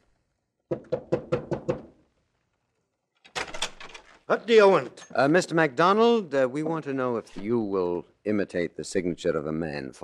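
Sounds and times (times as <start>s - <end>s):
speech: 0.7s - 1.4s, 4.3s - 10.0s
firm knocks on a wooden door: 0.7s - 1.9s.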